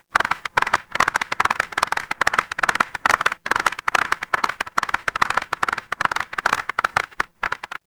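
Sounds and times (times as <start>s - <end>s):
crowd applause: 0.2s - 7.7s.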